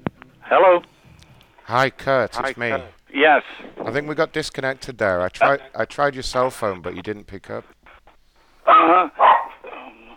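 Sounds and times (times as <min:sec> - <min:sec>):
speech: 0:00.5 - 0:00.9, 0:01.7 - 0:07.8
dog barking: 0:08.7 - 0:10.1.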